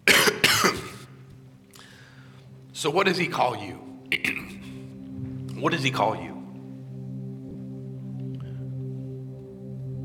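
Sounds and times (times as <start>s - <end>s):
harsh raspy coughs from someone with something caught in the throat: 0.0s - 1.2s, 4.1s - 4.8s
speech: 2.8s - 4.5s, 5.6s - 6.3s.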